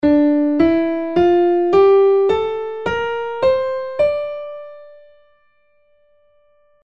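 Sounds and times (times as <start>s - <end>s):
D natural minor scale played: 0.0s - 5.2s.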